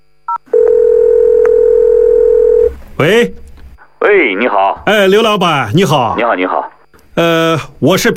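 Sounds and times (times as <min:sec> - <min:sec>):
steady unbroken telephone dial tone: 0:00.4 - 0:02.7
speech: 0:03.0 - 0:03.4, 0:04.3 - 0:08.1.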